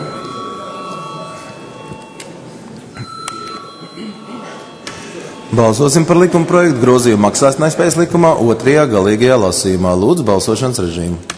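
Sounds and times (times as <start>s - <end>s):
parliament voting bell ringing: 0.0s - 7.9s
murmur of voices: 0.0s - 11.3s
speech: 5.5s - 11.3s.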